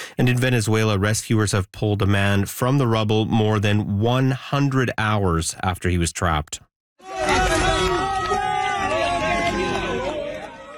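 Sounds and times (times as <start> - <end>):
speech: 0.2 - 7.3
crowd of onlookers cheering and shouting during a rescue in Venezuela: 7.0 - 10.7.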